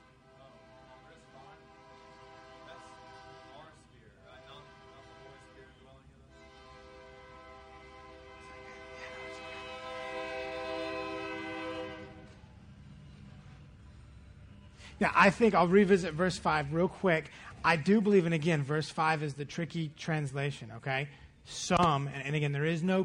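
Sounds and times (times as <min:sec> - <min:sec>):
passing train horn blasts: 0:00.0 - 0:12.5
low rumble of rail cars: 0:00.0 - 0:19.0
speech: 0:15.0 - 0:23.0.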